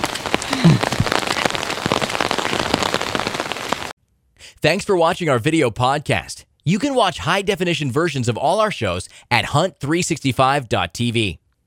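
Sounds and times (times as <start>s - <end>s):
steady rain pattering on a surface: 0.0s - 4.0s
speech: 4.6s - 11.4s.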